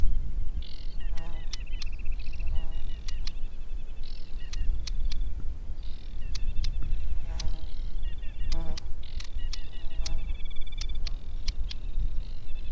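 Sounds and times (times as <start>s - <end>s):
Aquatic warbler Acrocephalus paludicola song with dry rattles and buzzy trills: 0.0s - 12.6s
sharp ticking clicks: 1.1s - 3.4s, 4.0s - 5.3s, 6.2s - 7.7s, 8.4s - 11.9s.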